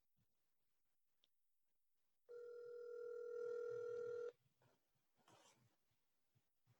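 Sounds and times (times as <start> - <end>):
phone line ringback tone: 2.3 - 4.3.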